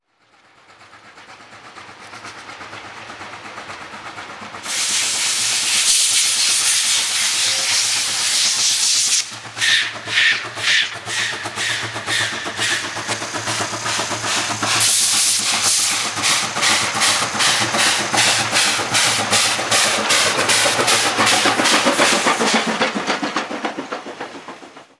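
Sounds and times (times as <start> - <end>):
steam locomotives: 0.0 - 24.9.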